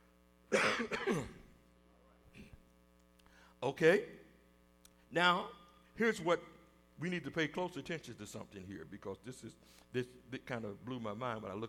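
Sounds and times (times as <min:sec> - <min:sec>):
speech: 0:00.5 - 0:01.3, 0:03.6 - 0:04.2, 0:05.1 - 0:11.6
person clearing throat: 0:00.5 - 0:01.5
person coughing: 0:00.5 - 0:01.5.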